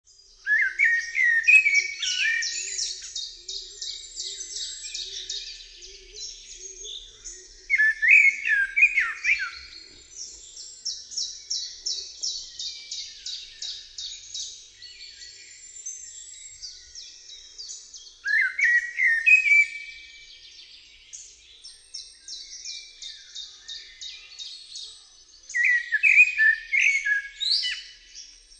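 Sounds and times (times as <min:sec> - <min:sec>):
birdsounds: 0:00.0 - 0:28.5.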